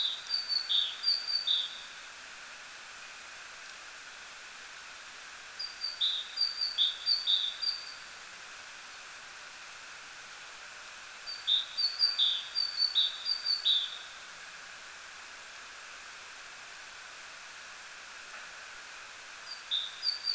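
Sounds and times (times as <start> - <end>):
Great tit Parus major delivering repeated two-note whistles: 0.0 - 1.9, 5.6 - 8.0, 11.3 - 14.1, 19.5 - 20.3
quiet hiss: 0.0 - 20.3.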